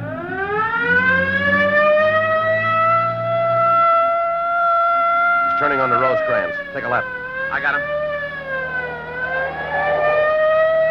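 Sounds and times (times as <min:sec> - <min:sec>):
siren wailing: 0:00.0 - 0:10.8
low engine rumble: 0:06.2 - 0:10.8
speech: 0:06.8 - 0:08.2.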